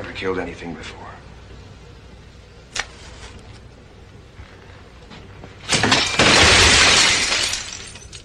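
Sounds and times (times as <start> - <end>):
speech: 0.2 - 1.2
glass cabinet full of lab equipment shattering as someone leans against it: 5.6 - 8.2.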